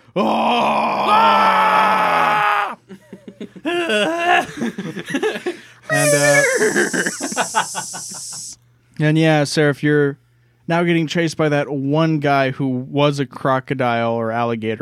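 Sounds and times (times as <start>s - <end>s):
speech: 0.2s - 1.4s, 6.1s - 14.7s
person shouting war cry: 0.2s - 2.8s, 5.9s - 8.5s
person yelling: 0.2s - 2.8s, 5.9s - 8.6s
laughter: 2.8s - 8.6s.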